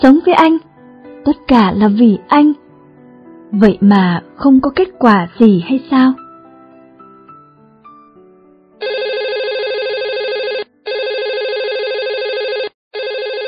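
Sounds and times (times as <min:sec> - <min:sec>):
speech: 0:00.0 - 0:02.6, 0:03.5 - 0:06.2
telephone ringing with a bright buzzy electronic tone: 0:08.8 - 0:13.4.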